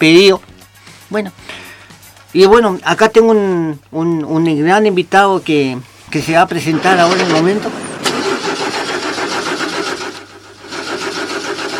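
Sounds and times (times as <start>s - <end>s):
speech: 0.0s - 0.5s, 1.1s - 1.6s, 2.3s - 7.8s
car engine cranking with a weak battery: 6.5s - 11.7s.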